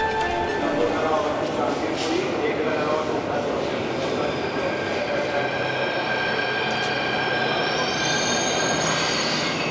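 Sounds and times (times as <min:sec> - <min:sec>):
Delhi metro train running with a rumbling roar: 0:00.1 - 0:09.6
faint voices: 0:00.4 - 0:08.4
Delhi metro train wheels squealing: 0:02.0 - 0:09.6.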